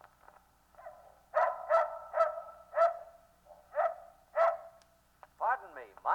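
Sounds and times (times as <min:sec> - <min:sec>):
dog barking: 0:00.8 - 0:04.8.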